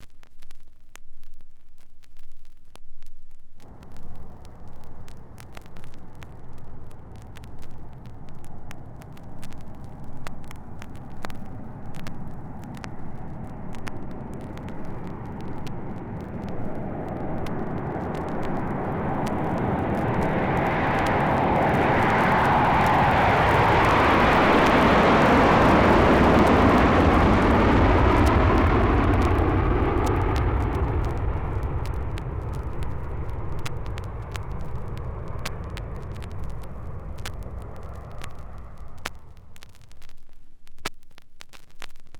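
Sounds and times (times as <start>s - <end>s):
jet taking off: 3.7s - 39.5s.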